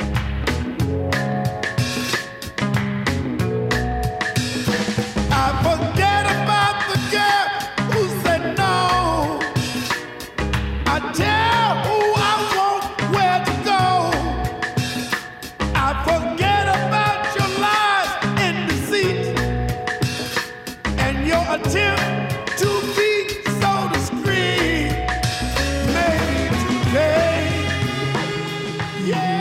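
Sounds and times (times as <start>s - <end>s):
loud full-band soul song with drums, bass and horns: 0.0s - 29.4s
male singer belting raspy near-screaming vocals: 5.3s - 10.0s, 10.9s - 14.8s, 15.7s - 19.6s, 20.9s - 29.4s.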